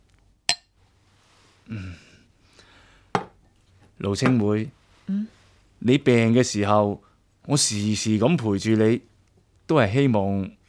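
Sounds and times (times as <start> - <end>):
glasses clinking in a toast: 0.5 - 0.7
speech: 1.7 - 2.1, 4.0 - 9.1, 9.7 - 10.6.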